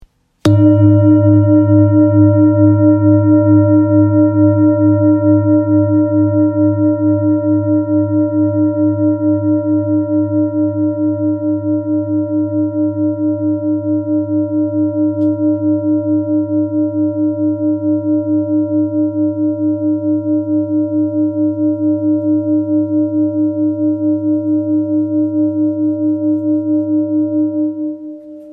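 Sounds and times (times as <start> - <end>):
therapy singing bowl in G sharp: 0.4 - 28.5.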